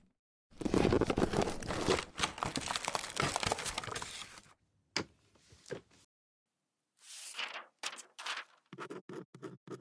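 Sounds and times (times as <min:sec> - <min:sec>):
paper being crumpled: 0:00.6 - 0:04.6, 0:07.0 - 0:08.7.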